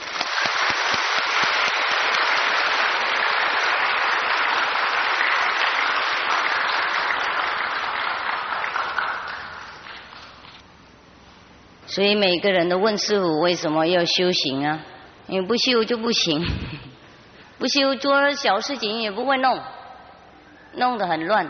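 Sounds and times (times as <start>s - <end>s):
large audience applause: 0.0s - 10.5s
speech: 12.0s - 16.9s, 17.6s - 19.8s, 20.8s - 21.4s.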